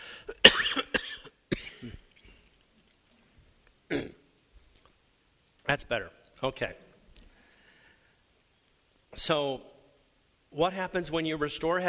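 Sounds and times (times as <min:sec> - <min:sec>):
harsh coughs: 0:00.3 - 0:02.1, 0:03.9 - 0:04.2
speech: 0:05.7 - 0:06.8, 0:09.2 - 0:09.7, 0:10.5 - 0:11.8.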